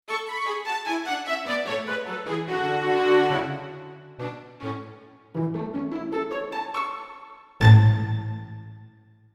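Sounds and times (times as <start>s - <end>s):
orchestral strings: 0.1s - 8.9s
orchestral winds: 1.0s - 8.5s.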